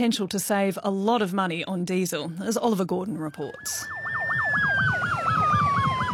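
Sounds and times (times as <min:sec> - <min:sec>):
speech: 0:00.0 - 0:04.0
fully electric fire truck siren wailing in Victoria, Australia: 0:03.4 - 0:06.1.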